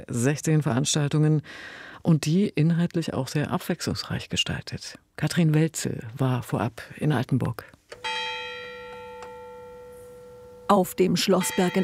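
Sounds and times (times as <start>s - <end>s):
speech: 0.1s - 8.2s, 10.7s - 11.8s
castle church bell strike on the Schlossberg in Altenburg: 8.0s - 11.8s.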